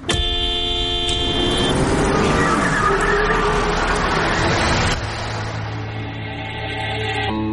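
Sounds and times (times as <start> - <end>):
car horn honking: 0.0 - 1.9
engine and traffic noise: 0.0 - 7.4.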